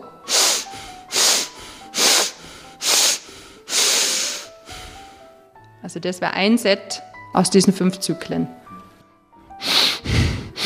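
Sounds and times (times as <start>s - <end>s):
airy nasal breathing and sniffs: 0.3s - 5.4s, 9.6s - 10.6s
speech: 5.8s - 8.7s.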